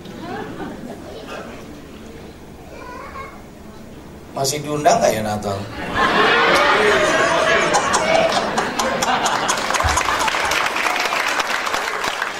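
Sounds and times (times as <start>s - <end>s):
murmur of crowd voices: 0.0s - 10.0s
laughter: 0.1s - 1.3s, 5.7s - 12.0s
speech: 4.4s - 7.1s
large audience applauding: 6.2s - 12.3s.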